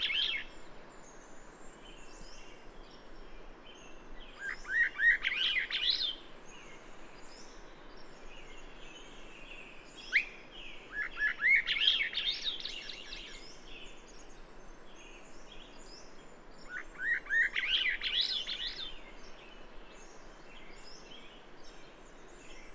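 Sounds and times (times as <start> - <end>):
bird chirping: 0.0 - 22.7.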